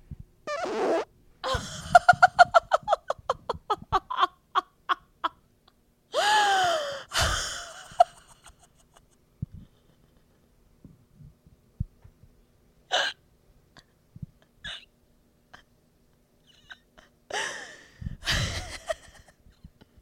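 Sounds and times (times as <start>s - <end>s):
fart: 0.5s - 1.1s
gasping laughs: 1.4s - 4.4s, 6.2s - 9.1s, 16.5s - 19.4s.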